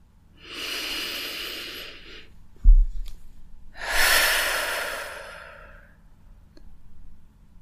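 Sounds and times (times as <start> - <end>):
deep breathing in and out during a guided relaxation exercise: 0.4 - 2.4, 3.7 - 6.0
soft low thump: 2.6 - 3.1.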